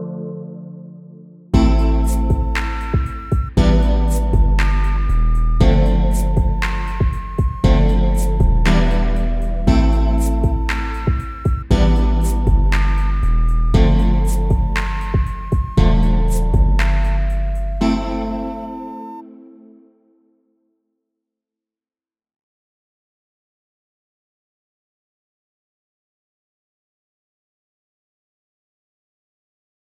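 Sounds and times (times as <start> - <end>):
sine wave tone: 1.6 - 19.6.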